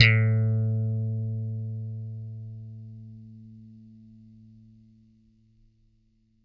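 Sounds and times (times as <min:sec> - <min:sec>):
plucked bass note A2: 0:00.0 - 0:04.9.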